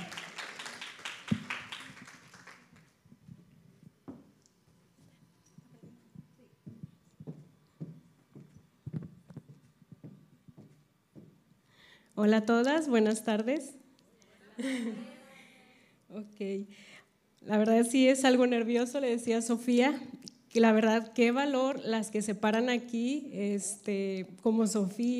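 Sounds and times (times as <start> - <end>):
audience applause: 0.0 - 2.9
speech: 12.2 - 13.8, 16.4 - 25.1
laughter: 14.4 - 15.6.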